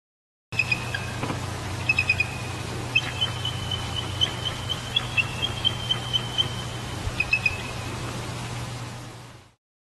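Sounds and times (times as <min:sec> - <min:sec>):
female bald eagle giving eerie whistling calls: 0:00.6 - 0:01.2, 0:01.8 - 0:08.0
low hum: 0:00.6 - 0:09.6.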